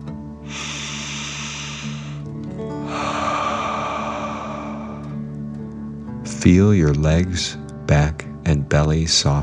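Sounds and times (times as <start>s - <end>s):
deep breath drawn in through the nose: 0.4s - 5.3s
long forceful exhale through the mouth: 0.5s - 5.3s
steady low hum: 2.9s - 5.7s
speech: 6.4s - 9.4s.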